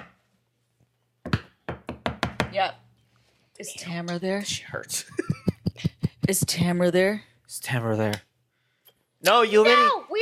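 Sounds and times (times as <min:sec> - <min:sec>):
knocking on a door: 0:01.3 - 0:02.6, 0:05.3 - 0:06.9
speech: 0:02.5 - 0:02.8, 0:03.6 - 0:08.3, 0:09.2 - 0:10.1.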